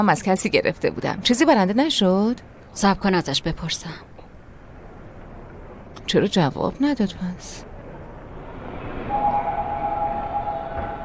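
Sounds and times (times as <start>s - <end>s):
speech: 0.0s - 4.1s, 6.1s - 7.7s
train rumble at a train station: 4.9s - 11.0s
thin sustained metallic squeal: 8.8s - 11.0s.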